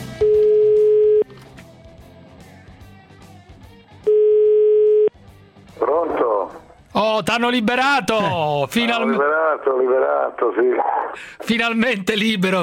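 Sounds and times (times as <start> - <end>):
Italian telephone ringback tone while calling home: 0.2 - 1.3, 4.1 - 5.1
speech: 7.2 - 12.6.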